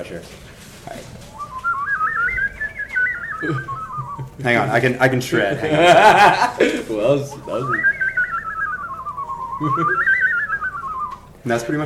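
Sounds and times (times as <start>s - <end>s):
speech: 0.0s - 1.4s, 3.4s - 8.0s, 9.6s - 10.1s, 11.4s - 11.8s
person whistling a warbling bird-like trill: 1.3s - 4.4s, 7.3s - 11.8s
laughter: 3.2s - 4.7s, 5.3s - 8.5s, 9.2s - 10.7s.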